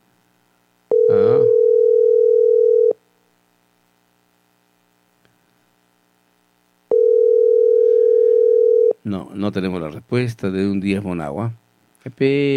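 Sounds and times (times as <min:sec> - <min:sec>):
telephone ringback tone as heard by the caller: 0:00.9 - 0:03.0, 0:06.9 - 0:09.0
speech: 0:09.1 - 0:12.5.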